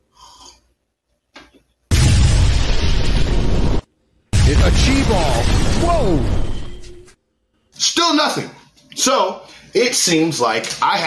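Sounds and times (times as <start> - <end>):
magical energy blast in a video game: 1.9 - 7.0
speech: 4.8 - 6.4, 7.8 - 11.0.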